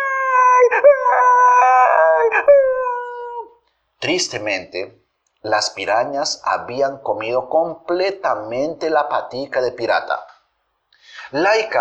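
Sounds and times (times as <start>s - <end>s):
dog howling in pain: 0.0s - 3.6s
speech: 4.0s - 10.3s, 11.3s - 11.7s.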